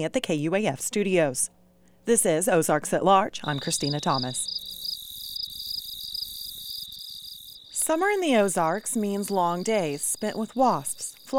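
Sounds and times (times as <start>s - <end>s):
speech: 0.0s - 4.7s, 7.9s - 11.3s
katydids and crickets chirping on a warm summer night in the Ozarks: 3.3s - 11.3s.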